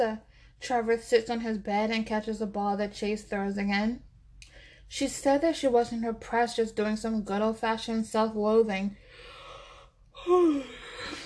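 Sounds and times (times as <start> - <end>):
speech: 0.0 - 9.0, 10.2 - 11.2
person yawning with a long airy exhale: 9.7 - 11.2.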